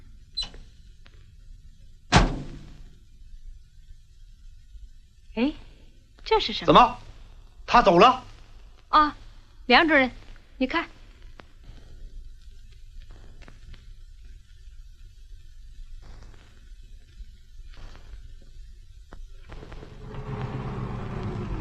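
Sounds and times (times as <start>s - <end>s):
speech: 6.4s - 7.0s, 7.7s - 8.3s, 8.9s - 11.0s
scattered rattles: 19.5s - 21.5s
truck engine rumbling as it drives past: 19.9s - 21.5s.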